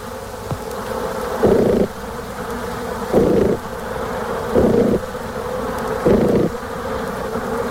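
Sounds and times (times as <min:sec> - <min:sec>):
honeybee buzzing pulses during a waggle dance: 0:00.0 - 0:07.7.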